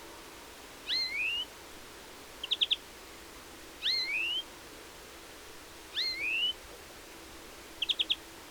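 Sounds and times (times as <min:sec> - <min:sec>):
European greenfinch calls and trill, Chloris chloris: 0:00.8 - 0:01.5, 0:02.4 - 0:02.8, 0:03.8 - 0:04.5, 0:05.9 - 0:06.6, 0:07.8 - 0:08.2.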